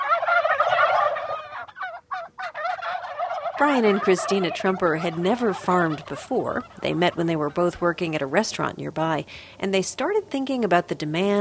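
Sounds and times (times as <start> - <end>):
Bourbon Red heritage-breed turkeys gobbling and chattering on a small organic farm: 0.0 - 8.8
speech: 3.6 - 11.3.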